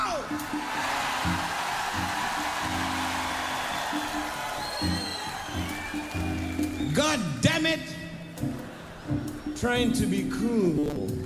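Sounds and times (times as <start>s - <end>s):
huge crowd at an open-air concert screaming and roaring: 0.1s - 7.0s
shrill whistles: 0.8s - 7.4s
speech: 9.6s - 11.2s.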